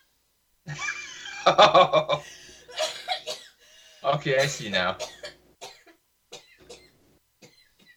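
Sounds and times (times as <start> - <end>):
laughter: 0.7 - 2.2
speech: 1.5 - 2.0, 4.2 - 5.1
sharp harsh coughing: 2.7 - 3.6, 4.3 - 7.9.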